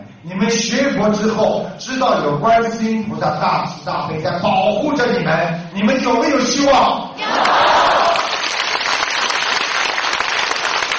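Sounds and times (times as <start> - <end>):
speech: 0.2 - 7.7
audience applauding at a Buddhist talk: 7.2 - 10.9.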